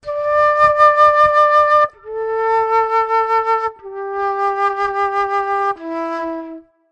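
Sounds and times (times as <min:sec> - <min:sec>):
melodic flute loop: 0:00.0 - 0:06.8.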